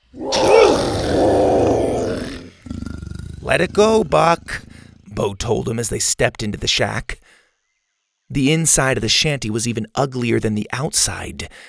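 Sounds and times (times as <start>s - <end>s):
dinosaur roar sound effect with harsh growling texture: 0.1s - 5.4s
speech: 3.5s - 7.3s, 8.3s - 11.6s.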